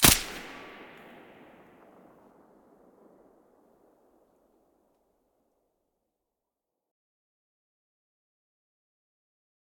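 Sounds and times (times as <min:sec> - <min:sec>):
silenced gunshot: 0:00.0 - 0:03.9.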